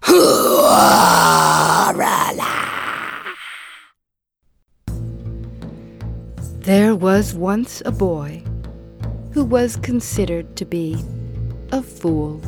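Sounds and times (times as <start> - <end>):
person imitating loud snoring: 0.0 - 3.9
speech: 6.7 - 8.5, 9.3 - 12.4.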